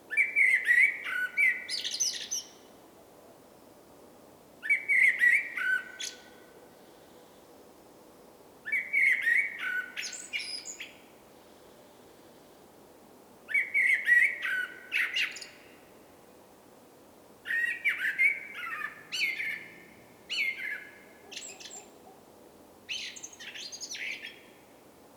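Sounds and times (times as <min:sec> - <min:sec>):
common blackbird Turdus merula song: 0:00.1 - 0:02.7, 0:08.7 - 0:11.0, 0:13.5 - 0:15.8, 0:17.5 - 0:22.2, 0:22.9 - 0:24.6.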